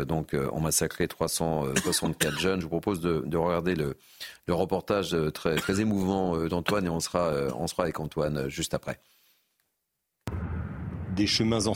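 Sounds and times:
speech: 0:00.0 - 0:09.1, 0:11.2 - 0:11.7
dull deep rumble: 0:10.3 - 0:11.7
heavy boom of cannon fire or bombs near Re'im: 0:10.3 - 0:11.7.

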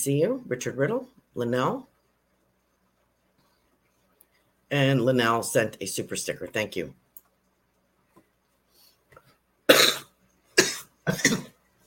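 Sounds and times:
speech: 0:00.0 - 0:01.9, 0:04.7 - 0:07.0
harsh ragged coughing: 0:09.7 - 0:11.6.

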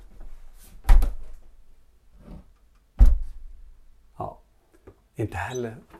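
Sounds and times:
old wooden door being shut gently: 0:00.8 - 0:01.4, 0:03.0 - 0:03.4
low thud: 0:03.0 - 0:03.4
speech: 0:05.2 - 0:05.9.

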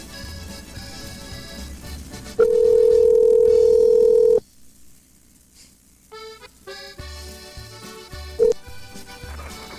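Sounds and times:
music bed: 0:00.0 - 0:03.8, 0:06.1 - 0:09.7
electronic ringing tone of a call to a cell phone: 0:02.4 - 0:04.4.

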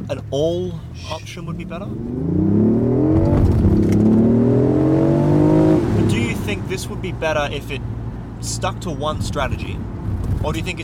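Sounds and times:
speech: 0:00.1 - 0:04.0, 0:06.5 - 0:10.8
hybrid sports car engine accelerating hard at a traffic light: 0:01.2 - 0:08.4.

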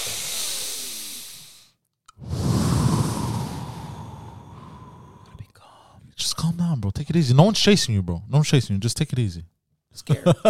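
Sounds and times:
person taking deep airy breaths: 0:00.0 - 0:06.1
speech: 0:06.5 - 0:10.4.

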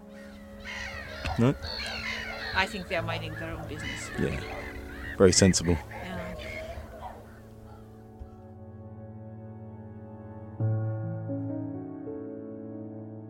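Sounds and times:
sustained musical tones: 0:00.0 - 0:11.6
geese honking: 0:00.2 - 0:08.0
speech: 0:01.4 - 0:02.0, 0:02.6 - 0:06.1.

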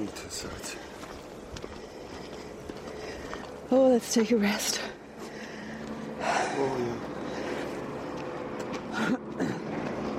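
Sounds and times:
speech: 0:00.0 - 0:01.0, 0:03.7 - 0:05.0, 0:06.6 - 0:07.2
broadband road noise: 0:00.0 - 0:10.1
heavy lorry engine rumbling along the road: 0:00.0 - 0:10.1.

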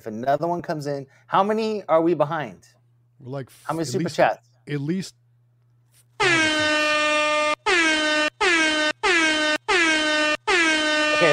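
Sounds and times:
speech: 0:00.0 - 0:05.2, 0:06.2 - 0:06.7
air horn blasts: 0:06.2 - 0:11.3.

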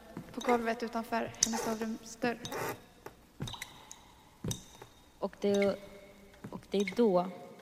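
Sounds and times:
speech: 0:00.4 - 0:02.8, 0:05.2 - 0:05.9, 0:06.7 - 0:07.4
water dripping: 0:03.4 - 0:07.0.

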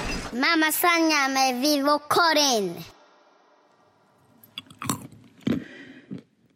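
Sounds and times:
speech: 0:00.6 - 0:02.9
crunching on cashew nuts: 0:04.4 - 0:06.3.

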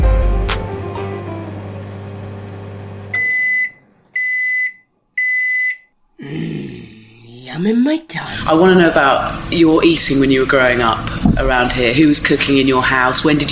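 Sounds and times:
smoke alarm beeping: 0:03.1 - 0:05.9
speech: 0:07.6 - 0:13.5
low rumbling noise: 0:08.9 - 0:12.4.

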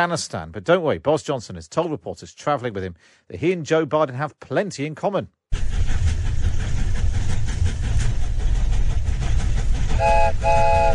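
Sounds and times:
speech: 0:00.0 - 0:05.4
train rumbling past with rattling clatter: 0:05.5 - 0:10.9
tonal horn-like note: 0:10.0 - 0:10.9.

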